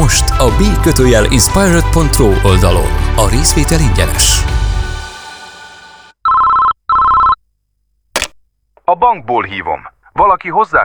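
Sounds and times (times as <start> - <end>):
speech: 0.1 - 4.6, 8.9 - 10.8
telephone ringing with electronic trills: 6.2 - 7.4.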